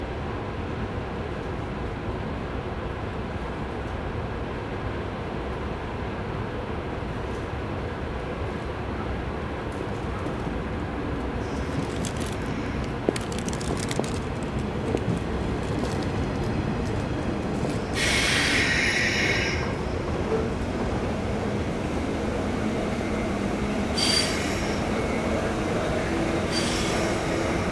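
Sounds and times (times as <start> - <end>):
train arriving at a station rumbling along the rails: 0.0 - 27.7
train wheels squealing as it slows: 18.0 - 19.8, 21.8 - 27.7.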